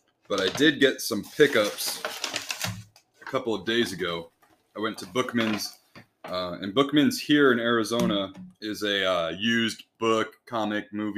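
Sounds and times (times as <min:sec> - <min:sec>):
speech: 0:00.3 - 0:02.2, 0:03.3 - 0:11.1
paper bag crinkling and rustling: 0:00.3 - 0:03.5.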